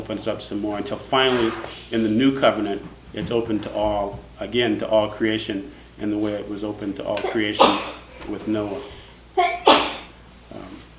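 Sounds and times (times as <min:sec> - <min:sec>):
speech: 0:00.1 - 0:09.9
sneeze: 0:01.3 - 0:01.9, 0:07.2 - 0:08.1, 0:09.4 - 0:10.2.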